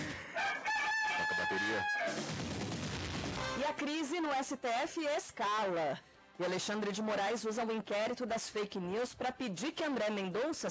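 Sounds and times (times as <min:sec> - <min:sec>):
rooster crowing: 0:00.1 - 0:02.2
speech: 0:01.7 - 0:02.3, 0:03.6 - 0:10.6.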